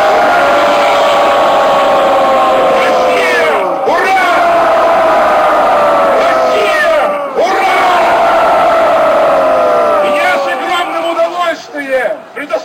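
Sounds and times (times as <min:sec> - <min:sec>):
large crowd at a rally in Novosibirsk Russia shouting hurrah: 0:00.0 - 0:12.4.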